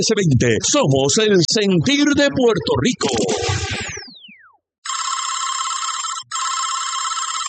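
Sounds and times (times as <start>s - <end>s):
speech: 0.0s - 3.8s
short descending whoosh: 1.9s - 4.5s
telephone ringing with electronic trills: 4.8s - 7.4s.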